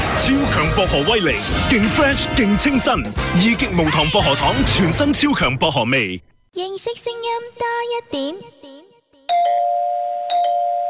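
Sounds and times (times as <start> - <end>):
speech: 0.3 - 8.7
doorbell chime ringing: 9.3 - 10.8.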